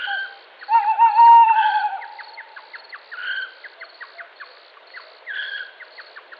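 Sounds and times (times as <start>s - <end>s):
tawny owl Strix aluco giving a long wavering hoot: 0.0s - 3.5s.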